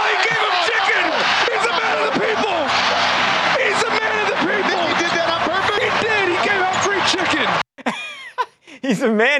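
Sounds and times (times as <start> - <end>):
large basketball arena crowd roaring and cheering during free throws: 0.0 - 7.7
speech: 8.9 - 9.3.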